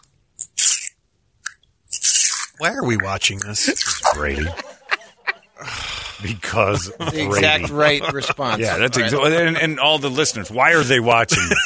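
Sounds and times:
turtle crunching and chewing watermelon: 0.0 - 4.3
speech: 2.6 - 4.7, 5.6 - 11.6
laughter: 2.6 - 11.6.

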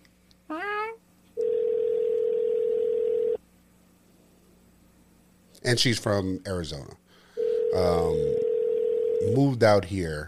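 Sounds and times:
phone call ringing tone long steady electronic beep: 1.4 - 3.4, 7.4 - 9.4
speech: 5.6 - 7.0, 7.7 - 8.4, 9.2 - 10.2.

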